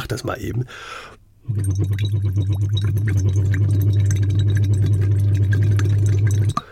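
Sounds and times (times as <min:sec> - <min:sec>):
speech: 0:00.1 - 0:05.6
voiced oo into a hose dipped in water, bubbling and rattling: 0:01.5 - 0:06.6.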